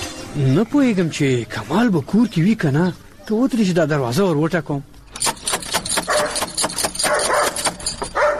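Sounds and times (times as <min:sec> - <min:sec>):
speech: 0:00.4 - 0:04.9
dog barking at a house door: 0:06.1 - 0:08.3.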